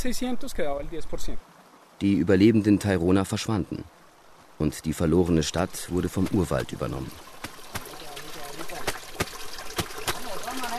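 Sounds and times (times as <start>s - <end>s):
speech: 0.0s - 4.0s, 4.6s - 7.3s
brook water trickling: 0.0s - 10.7s
woman beating a shirt with a stone while washing laundry: 6.1s - 10.7s.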